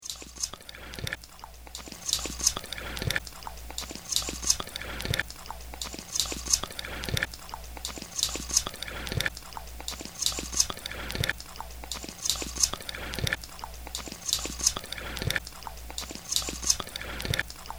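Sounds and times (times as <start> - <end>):
noise loop: 0.0 - 17.7.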